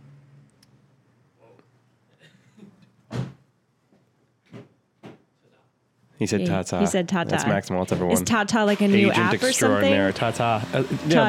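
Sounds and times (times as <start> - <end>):
door thud: 3.1 - 3.4
speech: 6.2 - 11.2.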